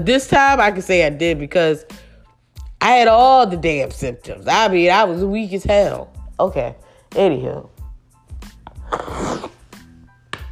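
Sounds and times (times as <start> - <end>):
speech: 0.0 - 2.0, 2.8 - 7.7, 8.9 - 9.2
rough sniff through a stuffed-up nose: 8.5 - 10.0.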